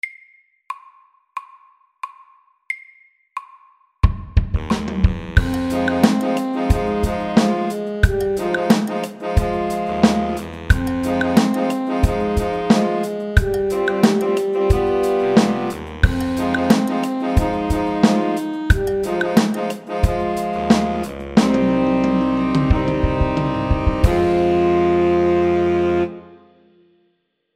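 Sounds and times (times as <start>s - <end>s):
funky drums at medium tempo: 3.4s - 25.4s.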